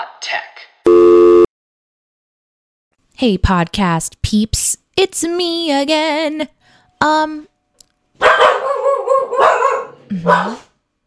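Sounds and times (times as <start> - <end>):
speech: 0.3 - 1.0, 3.2 - 7.5, 10.1 - 10.7
dogs barking: 8.2 - 10.7.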